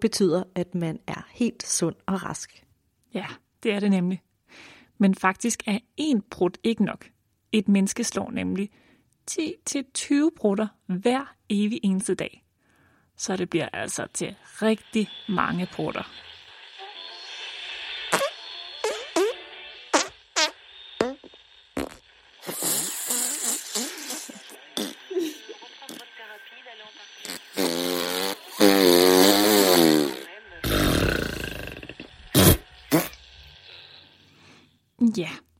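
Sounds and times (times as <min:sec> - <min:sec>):
speech: 0:00.0 - 0:12.4, 0:13.2 - 0:16.3
fart sound effects: 0:18.1 - 0:26.0, 0:27.2 - 0:33.5.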